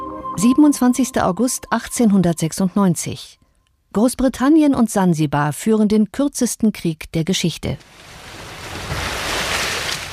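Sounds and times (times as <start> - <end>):
speech: 0.4 - 8.1
ocean waves lapping at a harbour: 7.9 - 10.1.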